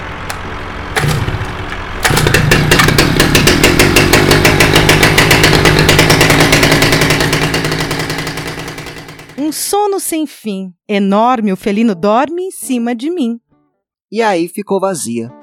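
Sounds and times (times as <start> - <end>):
tractor engine rumbling on the land: 0.0 - 9.7
chainsaw roaring: 0.9 - 9.6
speech: 9.5 - 13.4, 14.1 - 15.4.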